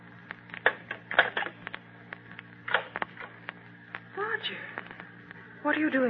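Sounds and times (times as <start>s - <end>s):
faint steady hum: 0.0s - 6.0s
telephone receiver being hung up: 0.6s - 1.6s, 2.7s - 3.3s
speech: 4.4s - 5.0s, 5.6s - 6.0s.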